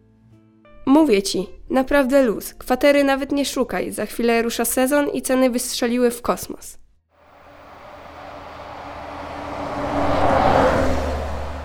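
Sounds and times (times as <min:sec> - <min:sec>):
speech: 0:00.9 - 0:06.8
bus engine rumbling and accelerating: 0:07.2 - 0:11.6
road noise: 0:07.2 - 0:11.6.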